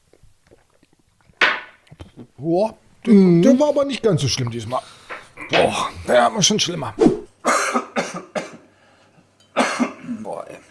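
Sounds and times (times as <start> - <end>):
speech: 2.4 - 7.2
harsh coughs: 4.7 - 8.7, 9.6 - 10.2.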